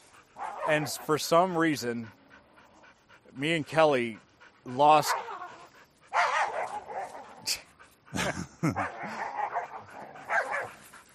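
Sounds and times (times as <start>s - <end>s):
dogs barking, yipping and snarling while play-fighting: 0.0s - 11.1s
speech: 0.7s - 2.2s, 3.4s - 5.2s, 8.6s - 9.2s
person laughing: 8.1s - 9.2s.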